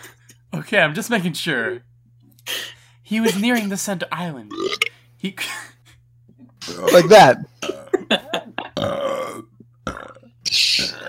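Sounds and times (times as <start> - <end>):
speech: 0.5 - 1.9, 3.1 - 5.7, 6.7 - 7.5
person belching loudly: 4.5 - 4.9, 6.7 - 8.1, 8.7 - 11.0.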